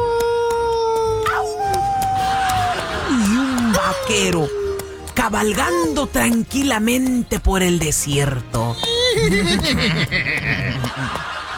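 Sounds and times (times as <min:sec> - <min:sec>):
coyotes howling in the distance: 0:00.0 - 0:06.0
faint regular ticking: 0:00.0 - 0:11.5
laughter: 0:01.0 - 0:06.2, 0:08.8 - 0:11.5
speech: 0:04.1 - 0:04.6, 0:05.2 - 0:11.3.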